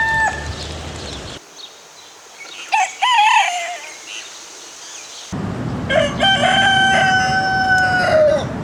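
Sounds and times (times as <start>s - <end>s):
rooster crowing, Gallus gallus domesticus: 0.0s - 0.6s, 2.7s - 4.0s, 5.9s - 8.5s.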